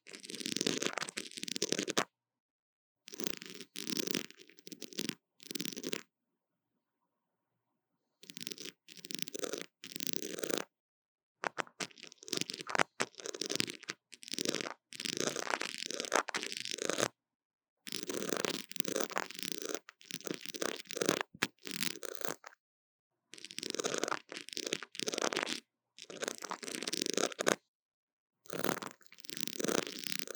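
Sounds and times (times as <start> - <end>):
scratching on a tiny microphone: 0.0 - 2.1, 3.1 - 6.0, 8.2 - 10.7, 11.4 - 17.2, 17.9 - 22.6, 23.4 - 27.6, 28.5 - 30.3
tapping on a tiny microphone: 11.4 - 13.2.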